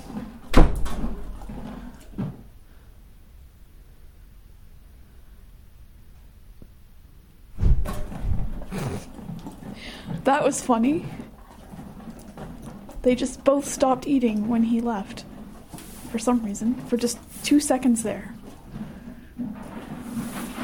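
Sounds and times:
clattering and rattling: 0.0 - 2.4, 7.6 - 20.6
door pushed closed with a solid thud: 0.5 - 1.2
speech: 10.3 - 11.2, 13.0 - 15.3, 16.1 - 18.4.

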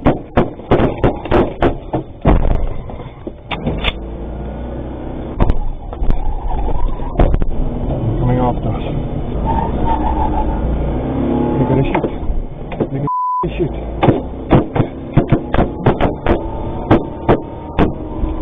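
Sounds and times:
armored truck engine rumble: 0.0 - 18.4
bursts of gunshots from robbers chasing an armored truck: 14.0 - 18.0.

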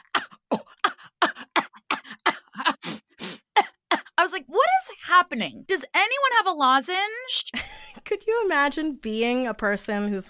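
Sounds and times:
voice imitating many kindergarten children coughing in a school gym: 0.0 - 4.2
speech: 5.2 - 10.2.

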